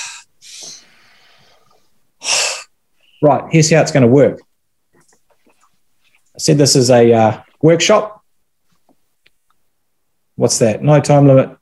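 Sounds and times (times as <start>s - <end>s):
big deep breath during a workshop exercise: 0.0s - 3.2s
speech: 3.2s - 4.5s, 6.4s - 8.2s, 10.4s - 11.5s.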